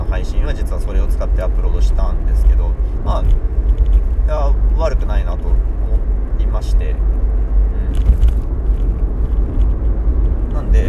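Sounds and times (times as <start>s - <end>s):
road and engine drone inside a moving car: 0.0s - 10.8s
speech: 0.2s - 8.2s.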